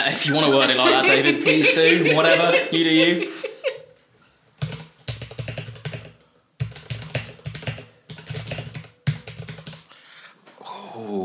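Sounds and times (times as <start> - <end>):
speech: 0.0 - 3.5
laughter: 0.0 - 3.9
typing on a mechanical keyboard with brown tactile switches: 4.6 - 9.9.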